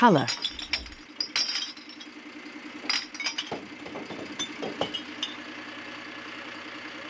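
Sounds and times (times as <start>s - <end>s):
speech: 0.0s - 0.5s
glass bottles and cans clinking and clattering into truck compartments: 0.0s - 2.2s, 2.8s - 5.4s
household recycling truck idling with a low engine hum: 0.2s - 7.0s.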